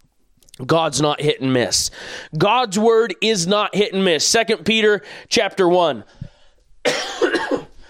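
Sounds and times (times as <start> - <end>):
speech: 0.6 - 6.2
man coughing while preaching: 6.8 - 7.8.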